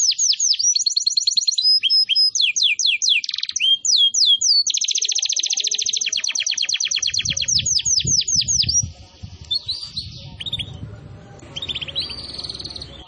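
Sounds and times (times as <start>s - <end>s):
canary song used as a lure for wild canaries: 0.0s - 13.0s
low rumbling background: 8.8s - 13.0s.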